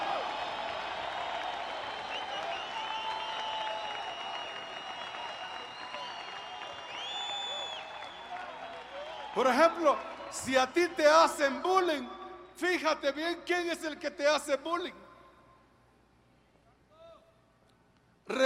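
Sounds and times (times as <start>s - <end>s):
large audience cheering and shouting: 0.0s - 3.9s
large audience clapping: 0.0s - 10.6s
high whistles from audience: 0.4s - 9.6s
speech: 9.4s - 15.0s.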